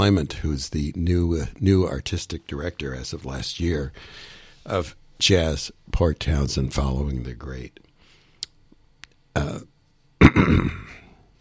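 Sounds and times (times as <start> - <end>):
speech: 0.0 - 7.8, 9.4 - 10.8
person coughing or clearing throat: 10.2 - 11.2.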